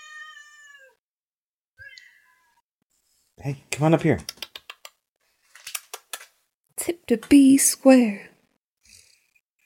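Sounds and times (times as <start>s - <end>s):
cat meowing: 0.0s - 1.0s
speech: 3.4s - 4.4s, 7.1s - 8.3s.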